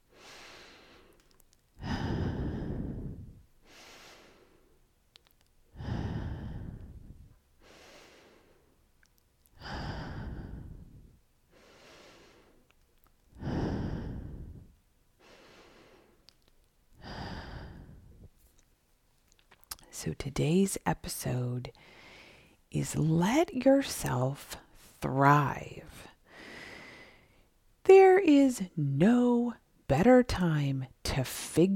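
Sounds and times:
slow deep breathing in through the nose and out through the mouth: 0:00.1 - 0:04.8, 0:05.7 - 0:08.8, 0:09.6 - 0:12.7, 0:13.3 - 0:16.3, 0:17.0 - 0:18.4, 0:21.8 - 0:22.6, 0:26.2 - 0:27.6
speech: 0:20.0 - 0:22.0, 0:22.7 - 0:26.1, 0:28.2 - 0:31.7.

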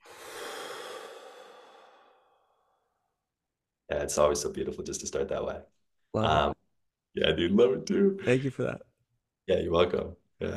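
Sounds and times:
deep breath in and slow exhale: 0:00.0 - 0:02.9
speech: 0:03.9 - 0:06.5, 0:07.2 - 0:08.9, 0:09.5 - 0:10.5.

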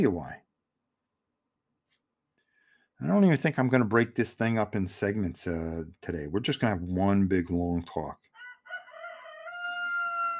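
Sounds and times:
speech: 0:00.0 - 0:00.4, 0:03.0 - 0:08.3
rooster crowing outside a garage door: 0:08.3 - 0:10.3.

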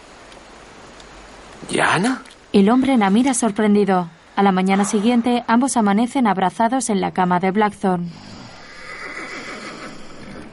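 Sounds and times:
steady outdoor noise: 0:00.0 - 0:10.5
speech: 0:01.6 - 0:08.4
horses neighing: 0:08.3 - 0:10.5.

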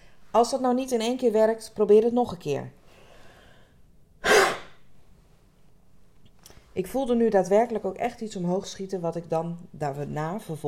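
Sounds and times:
speech: 0:00.4 - 0:02.8, 0:06.8 - 0:10.6
forceful seal-like throat huff as a voice exercise: 0:04.2 - 0:04.8.

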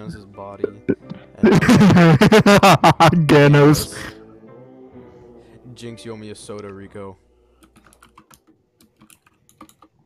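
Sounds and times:
speech: 0:00.0 - 0:04.1, 0:05.8 - 0:07.2
laughter: 0:01.4 - 0:04.1
typing on a computer keyboard: 0:07.6 - 0:10.0.

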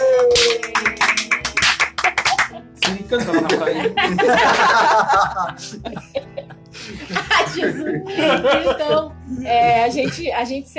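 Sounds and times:
small group clapping hands: 0:00.0 - 0:03.6
laughter: 0:02.0 - 0:10.2
speech: 0:03.1 - 0:06.3, 0:06.9 - 0:10.7.

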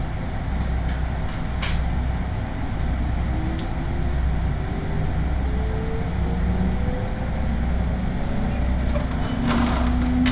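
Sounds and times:
steady low rumble inside a local train: 0:00.0 - 0:10.3.

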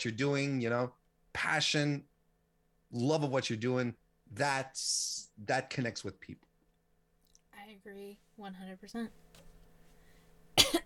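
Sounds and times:
speech: 0:00.0 - 0:02.1, 0:02.9 - 0:06.5, 0:07.7 - 0:09.2
faint hum: 0:00.0 - 0:10.8
person coughing: 0:10.6 - 0:10.8.

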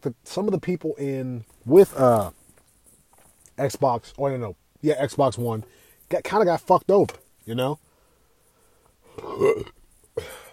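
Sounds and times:
speech: 0:00.0 - 0:02.4, 0:03.6 - 0:07.8, 0:09.2 - 0:10.4
loud person burping: 0:09.1 - 0:10.5.

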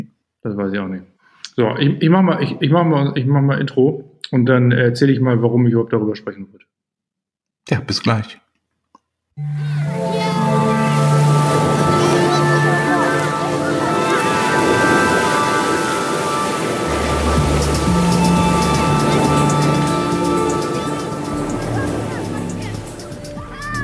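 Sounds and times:
speech: 0:00.0 - 0:06.8, 0:07.7 - 0:08.4, 0:09.4 - 0:10.6
faint tonal layer: 0:09.4 - 0:23.8
ocean waves breaking on a beach: 0:09.9 - 0:23.0.

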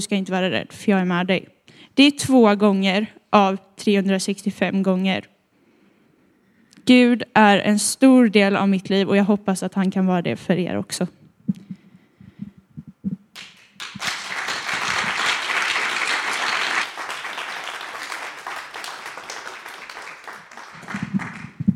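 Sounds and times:
speech: 0:00.0 - 0:05.3, 0:06.9 - 0:11.6
audience applause: 0:13.4 - 0:21.7.

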